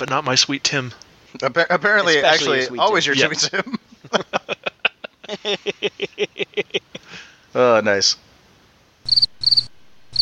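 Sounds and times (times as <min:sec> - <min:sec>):
speech: 0:00.0 - 0:04.3, 0:05.4 - 0:08.2
laughter: 0:03.1 - 0:07.1
crickets chirping: 0:09.0 - 0:10.1.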